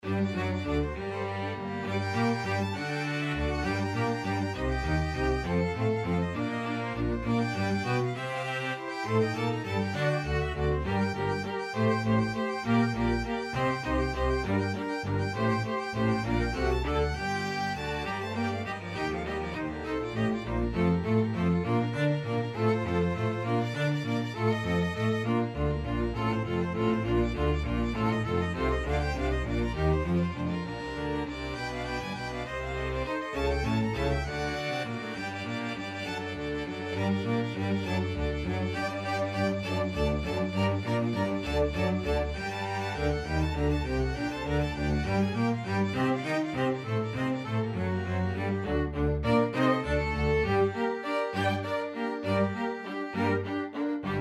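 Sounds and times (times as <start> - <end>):
string ensemble playing a sonata: 0.0 - 54.1.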